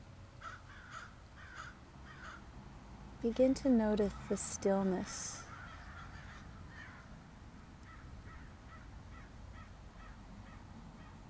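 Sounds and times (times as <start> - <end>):
constant low outdoor rumble: 0.0 - 11.2
crows cawing: 0.4 - 2.5, 5.4 - 7.2, 7.8 - 11.2
speech: 3.2 - 5.4.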